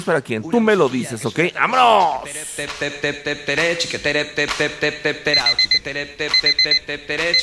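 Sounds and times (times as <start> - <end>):
speech: 0.0 - 7.4
alarm clock ringing with an electronic melody: 5.4 - 5.8, 6.4 - 7.4.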